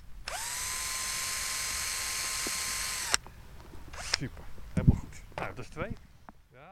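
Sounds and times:
power drill fastening a base plate onto a house roof: 0:00.2 - 0:03.2, 0:03.9 - 0:04.2
speech: 0:04.2 - 0:06.7.

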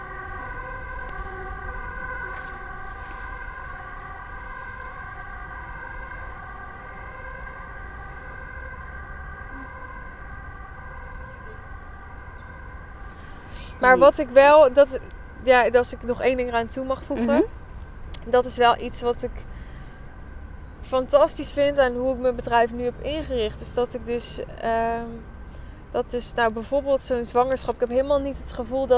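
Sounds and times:
ambulance siren passing by: 0:00.0 - 0:24.4
speech: 0:13.8 - 0:17.6, 0:18.3 - 0:19.5, 0:20.9 - 0:25.3, 0:25.9 - 0:28.9.

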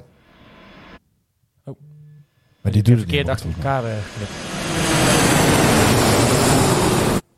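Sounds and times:
speech: 0:01.7 - 0:01.9, 0:02.6 - 0:05.0
airplane engine roar flying overhead: 0:03.2 - 0:07.2.

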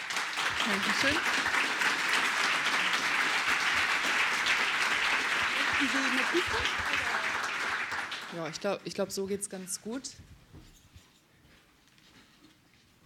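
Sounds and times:
sustained audience applause welcoming a speaker: 0:00.0 - 0:08.6
speech: 0:00.6 - 0:01.4, 0:05.8 - 0:07.0, 0:08.3 - 0:10.4.

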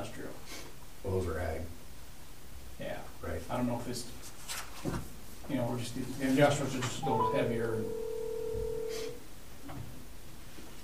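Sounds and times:
faint telephone line hiss: 0:00.0 - 0:10.8
speech: 0:01.1 - 0:01.8, 0:03.5 - 0:08.0
steady telephone line tone: 0:07.0 - 0:09.2.

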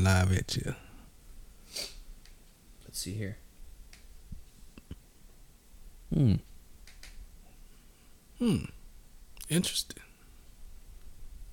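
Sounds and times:
speech: 0:00.0 - 0:00.8, 0:02.9 - 0:03.4, 0:06.1 - 0:06.5, 0:08.4 - 0:08.8, 0:09.5 - 0:10.0
person sniffing a whiskey sample: 0:01.6 - 0:02.0.

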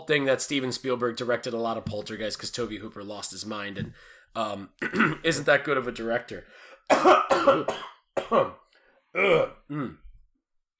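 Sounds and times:
speech: 0:00.1 - 0:10.0
deliberate fake coughing: 0:04.8 - 0:05.2, 0:06.9 - 0:08.6
throat clearing: 0:06.9 - 0:08.6, 0:09.2 - 0:10.2.

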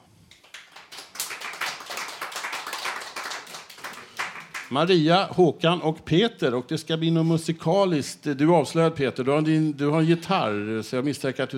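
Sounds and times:
crowd applauding to welcome seated guests: 0:00.3 - 0:04.7
speech: 0:04.7 - 0:11.5.

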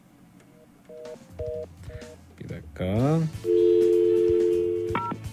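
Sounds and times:
speech: 0:02.8 - 0:03.6
telephone dial tone: 0:03.5 - 0:05.1.

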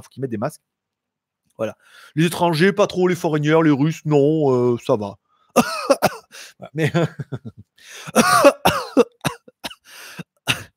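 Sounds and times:
speech: 0:00.0 - 0:00.8, 0:01.6 - 0:09.2
harsh coughs right up against the microphone: 0:05.6 - 0:06.3, 0:08.1 - 0:09.8, 0:10.4 - 0:10.7
laughter: 0:06.8 - 0:08.6.

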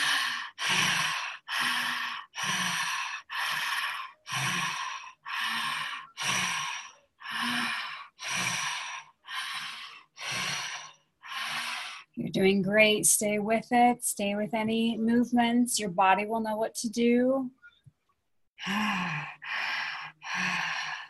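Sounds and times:
rhythmic breathing at a two-count pace: 0:00.0 - 0:12.3, 0:18.5 - 0:21.0
speech: 0:12.3 - 0:17.6.

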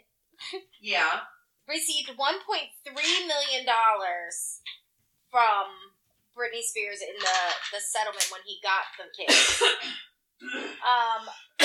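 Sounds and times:
speech: 0:00.5 - 0:11.4
person coughing roughly: 0:09.3 - 0:11.0.

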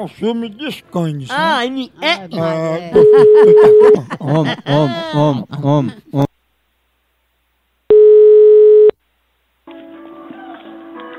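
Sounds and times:
speech: 0:00.0 - 0:06.3
laughter: 0:02.4 - 0:06.3
telephone line tone while a call is being placed: 0:03.0 - 0:04.0, 0:07.9 - 0:09.0.

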